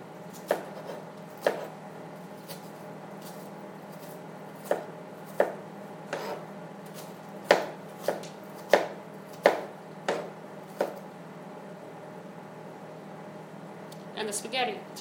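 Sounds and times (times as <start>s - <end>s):
knife chopping a layered onion on a cutting board for spaghetti sauce: 0.3s - 1.8s, 2.4s - 11.0s
speech: 14.3s - 14.9s.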